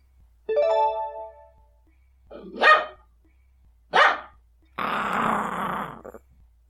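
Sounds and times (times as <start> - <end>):
guard dog barking loudly: 2.3 - 3.1, 3.9 - 4.4
guard dog rough growling snarl: 4.8 - 6.4.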